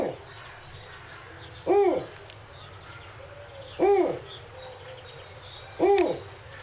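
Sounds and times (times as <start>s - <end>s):
faint birdsong: 0.0s - 6.6s
snowy owl territorial call: 1.6s - 2.2s, 3.2s - 4.9s, 5.8s - 6.4s.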